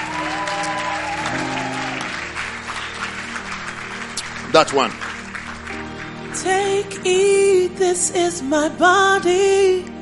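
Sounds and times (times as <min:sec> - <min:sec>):
audience at a church service applauding: 0:00.0 - 0:06.9
speech: 0:04.6 - 0:05.0, 0:06.4 - 0:09.9.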